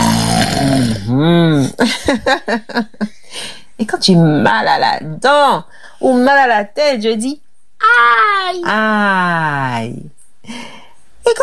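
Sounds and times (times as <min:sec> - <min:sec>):
voice imitating a father's snoring: 0:00.0 - 0:01.6
speech: 0:00.6 - 0:02.9, 0:03.8 - 0:11.4.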